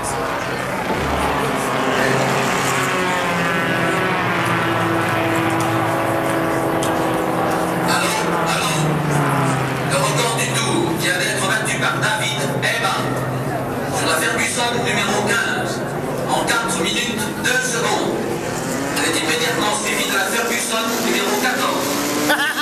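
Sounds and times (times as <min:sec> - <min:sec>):
race car engines starting and pulling away: 0:00.0 - 0:22.5.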